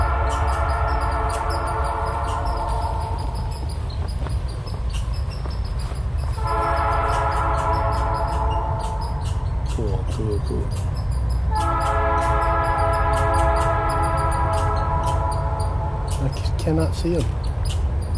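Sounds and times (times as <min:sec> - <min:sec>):
loud sustained train horn blast: 0:00.0 - 0:03.6, 0:06.4 - 0:09.4, 0:11.5 - 0:16.2
train rumbling past: 0:00.0 - 0:18.1
speech: 0:17.0 - 0:17.4.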